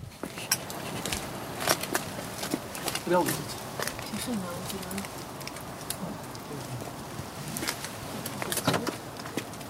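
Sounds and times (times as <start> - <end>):
footsteps of three people walking toward a small terraced house: 0.0 - 9.6
speech: 3.1 - 3.6, 4.2 - 5.2.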